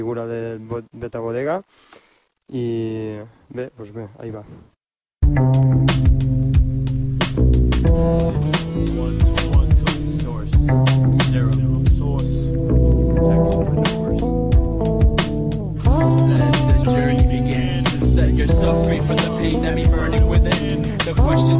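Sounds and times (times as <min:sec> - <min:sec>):
speech: 0:00.0 - 0:04.7
song intro with loud steady beat, percussive hits, deep bass and sustained tones: 0:05.2 - 0:21.5.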